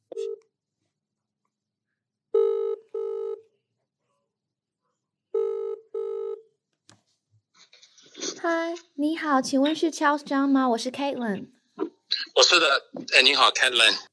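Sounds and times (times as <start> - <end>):
telephone ringback tone heard down the line: 2.4 - 3.4, 5.4 - 6.4
speech: 8.4 - 11.6, 12.4 - 14.1.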